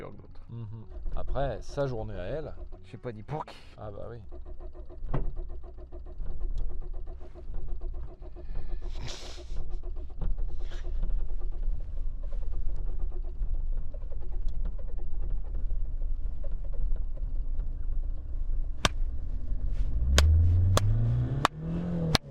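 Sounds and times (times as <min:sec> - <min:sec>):
speech: 0:00.0 - 0:05.3
petrol car starter motor cranking the engine on battery: 0:00.9 - 0:22.2.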